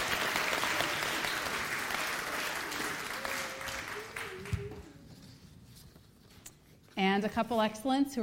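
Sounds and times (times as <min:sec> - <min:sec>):
room full of people applauding: 0:00.0 - 0:05.0
speech: 0:07.0 - 0:08.2.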